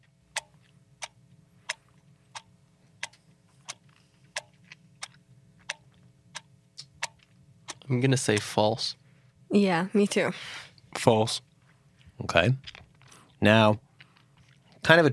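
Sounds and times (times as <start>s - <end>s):
small clock ticking: 0.0s - 8.6s
low hum: 0.0s - 15.1s
speech: 7.9s - 11.5s, 12.2s - 12.8s, 13.4s - 13.8s, 14.9s - 15.1s.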